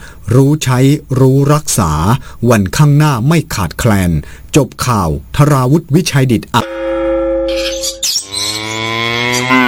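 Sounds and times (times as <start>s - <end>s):
speech: 0.3s - 6.8s, 7.5s - 7.8s
water buffalo mooing: 7.5s - 9.6s.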